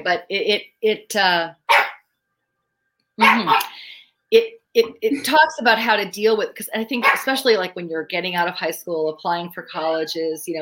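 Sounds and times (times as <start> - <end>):
speech: 0.0 - 1.8, 3.2 - 10.6
pug puppy barking with excited yips: 1.7 - 2.0, 3.2 - 3.7, 7.0 - 7.3.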